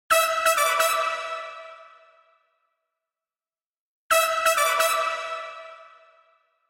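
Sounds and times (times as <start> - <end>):
brass with deep chamber digital reverb: 0.1 - 2.5, 4.1 - 6.5.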